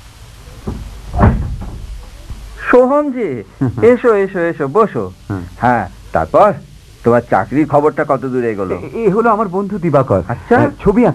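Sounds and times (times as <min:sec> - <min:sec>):
door being opened: 0:00.4 - 0:02.6
heavy thud: 0:00.5 - 0:02.6
speech: 0:02.8 - 0:11.1.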